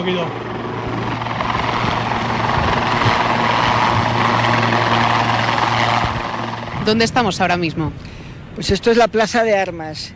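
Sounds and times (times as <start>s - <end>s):
speech: 0.0s - 0.5s, 6.9s - 10.1s
helicopter rotor and turbine roar: 0.0s - 9.2s
helicopter hovering and turning at a military base: 0.0s - 9.3s.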